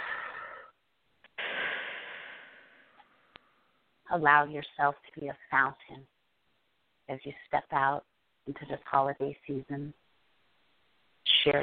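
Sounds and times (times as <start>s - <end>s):
breathy inhalation: 0.0s - 0.8s, 1.4s - 3.8s
slow deep exhale: 0.0s - 0.8s, 1.4s - 3.7s
speech: 4.1s - 6.1s, 7.1s - 10.0s, 11.4s - 11.6s.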